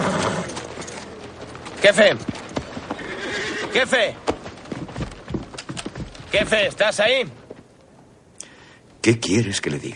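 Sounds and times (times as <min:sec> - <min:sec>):
horse whinny: 0:00.0 - 0:00.6, 0:02.9 - 0:03.9
horse hooves clopping beneath a hotel room window: 0:00.0 - 0:08.1
speech: 0:01.8 - 0:02.4, 0:03.7 - 0:04.3, 0:06.3 - 0:07.4, 0:09.0 - 0:09.9.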